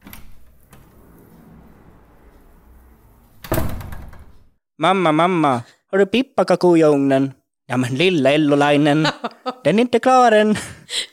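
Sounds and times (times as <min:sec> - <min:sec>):
door creaking and rattling open: 0:00.0 - 0:04.6
speech: 0:04.8 - 0:11.1.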